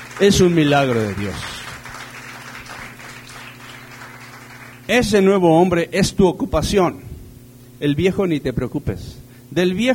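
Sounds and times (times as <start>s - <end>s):
audience applause: 0.0s - 4.9s
speech: 0.2s - 1.5s, 4.9s - 7.1s, 7.8s - 9.9s.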